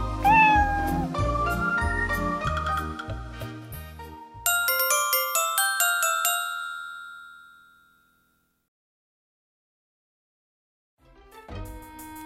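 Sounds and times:
cat meowing: 0.1s - 1.2s
bouncy musical tune: 0.2s - 3.2s, 4.5s - 7.5s
ringing chime notes: 4.5s - 8.5s.

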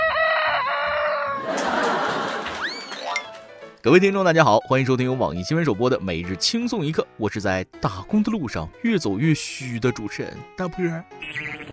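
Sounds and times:
black-boned silkie rooster crowing early in the morning: 0.0s - 1.6s
laughter: 1.4s - 3.2s
speech: 3.8s - 11.7s.

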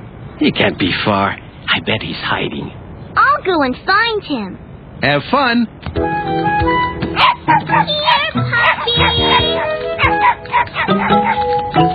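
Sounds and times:
speech: 0.4s - 2.8s, 3.4s - 6.7s, 7.5s - 9.7s
puppies barking and yipping: 7.1s - 11.8s.

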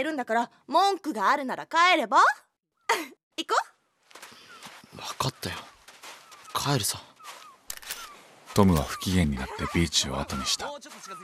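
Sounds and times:
speech: 0.0s - 3.8s, 5.0s - 5.8s, 6.6s - 7.1s, 8.6s - 11.2s
camera shutter clicking on a beach: 7.7s - 8.1s
laughter: 9.0s - 10.7s.

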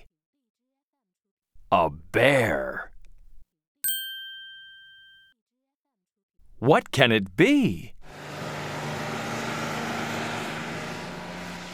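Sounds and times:
speech: 1.7s - 2.9s, 6.6s - 8.0s
bus road noise rumbling: 8.0s - 11.7s
bus engine droning: 8.1s - 11.7s.

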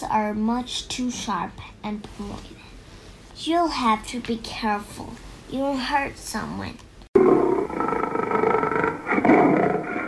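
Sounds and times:
speech: 0.0s - 2.7s, 3.4s - 6.8s
lion yelping: 7.2s - 10.0s.

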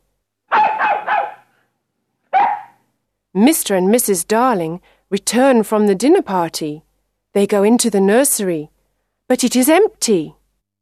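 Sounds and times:
dog barking: 0.5s - 1.6s, 2.3s - 2.8s
speech: 3.4s - 10.4s.

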